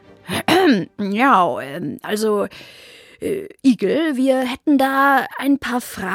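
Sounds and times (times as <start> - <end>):
person clearing throat: 0.3 - 0.8
speech: 0.7 - 6.1.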